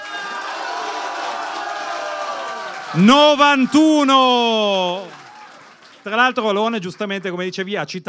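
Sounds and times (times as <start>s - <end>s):
crowd cheering and whooping: 0.0s - 5.8s
crowd applauding: 0.0s - 7.7s
speech: 2.9s - 5.2s, 6.0s - 8.0s.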